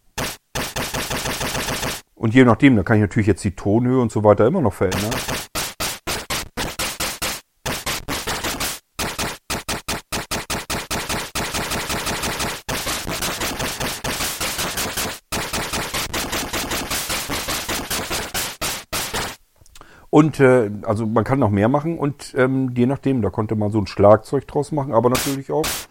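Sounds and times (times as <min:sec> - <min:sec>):
C64 noise generator bursts of synthesized white noise: 0:00.0 - 0:02.0, 0:04.9 - 0:19.4, 0:25.2 - 0:25.8
speech: 0:02.2 - 0:05.5, 0:20.2 - 0:25.8.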